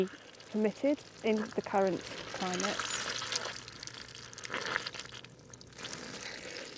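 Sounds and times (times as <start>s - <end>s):
speech: 0.0s - 3.0s
wet squelchy water sounds from soggy peat bog ground: 0.0s - 6.7s.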